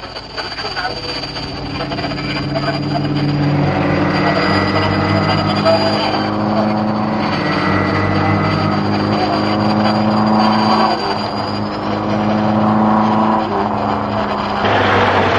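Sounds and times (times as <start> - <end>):
continuous rolling road noise of approaching cars: 0.0 - 15.3
line of cars approaching, one towing a caravan: 0.0 - 15.3.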